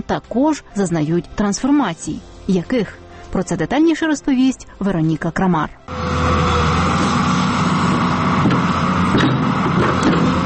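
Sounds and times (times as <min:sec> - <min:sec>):
speech: 0:00.1 - 0:06.4
powerful engine roaring: 0:05.9 - 0:10.4.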